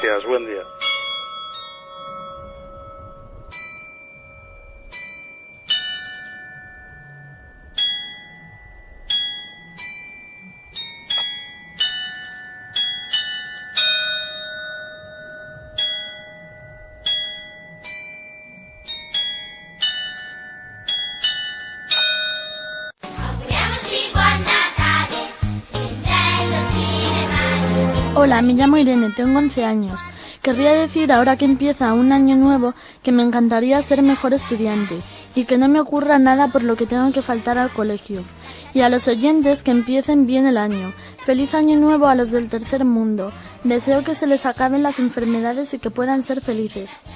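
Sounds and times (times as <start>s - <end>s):
speech: 0.0s - 0.9s, 28.3s - 47.1s
carillon bell tune: 0.0s - 23.0s, 26.2s - 29.7s
loud dense burst of music: 23.0s - 29.5s.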